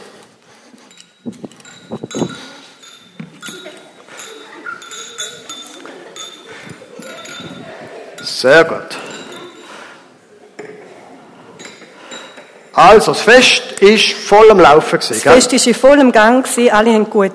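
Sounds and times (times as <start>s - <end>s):
glasses clinking in a toast to the bride and groom at a festive celebration: 0.9s - 9.8s, 11.6s - 12.6s
speech: 1.2s - 1.6s, 8.4s - 9.0s, 12.8s - 17.3s
murmur of voices and chatter: 3.4s - 15.8s.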